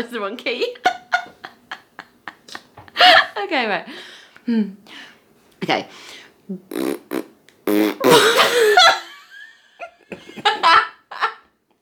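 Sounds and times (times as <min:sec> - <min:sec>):
speech: 0:00.0 - 0:01.0, 0:03.0 - 0:07.0
laughter: 0:00.7 - 0:03.4, 0:08.1 - 0:11.6
raspberry noises blown with the lips: 0:06.5 - 0:08.3.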